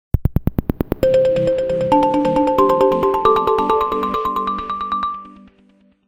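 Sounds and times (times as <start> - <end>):
Nokia happy chord ringtone: 1.0 - 5.6.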